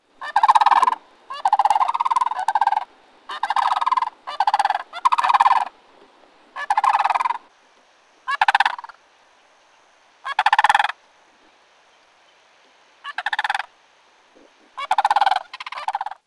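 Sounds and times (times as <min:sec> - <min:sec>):
sandhill crane calling: 0:00.2 - 0:05.8, 0:06.5 - 0:07.5, 0:08.2 - 0:09.0, 0:10.2 - 0:11.5, 0:13.0 - 0:16.2.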